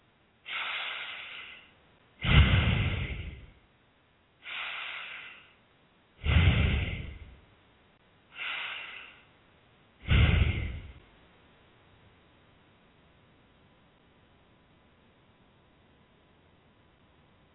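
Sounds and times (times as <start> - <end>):
long deep breathing with slow inhale and exhale: 0.5 - 3.6, 4.4 - 5.6, 6.2 - 7.4, 8.3 - 9.4, 10.0 - 11.0.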